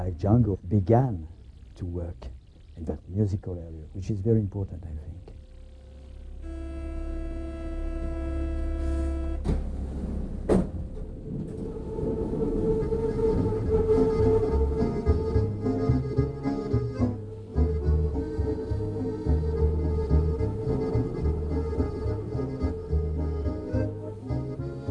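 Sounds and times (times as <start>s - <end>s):
speech: 0.0s - 5.3s
buskers playing accordion-like tones: 6.2s - 9.4s, 12.7s - 24.8s
metro train rumbling and rattling in motion: 6.4s - 24.8s
sharp clunk: 9.4s - 11.1s.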